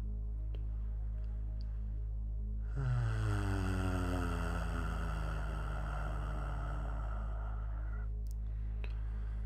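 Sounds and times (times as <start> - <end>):
faint low drone: 0.0 - 9.4
deep steady human hum on the exhale during a breathing exercise: 2.6 - 9.4.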